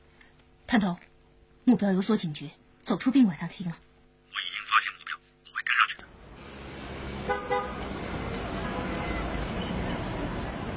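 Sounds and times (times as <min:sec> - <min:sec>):
speech: 0:00.7 - 0:04.5
roar of busy street traffic: 0:05.0 - 0:10.7
car horn honks: 0:07.2 - 0:07.8.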